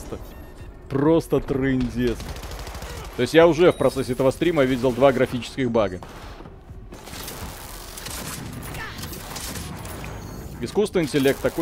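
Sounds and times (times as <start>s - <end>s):
speech: 0.9s - 2.4s, 3.2s - 6.4s, 10.6s - 11.5s
rapid video game gunfire: 1.8s - 3.5s, 6.0s - 11.5s.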